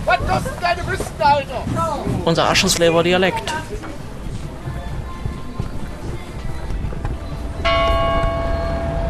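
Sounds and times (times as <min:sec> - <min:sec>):
faint voices at an outdoor market: 0:00.0 - 0:08.0
steady street noise at an outdoor market: 0:00.0 - 0:09.0
speech: 0:00.1 - 0:03.9
church bells ringing over an outdoor market in Aschersleben: 0:07.6 - 0:09.0.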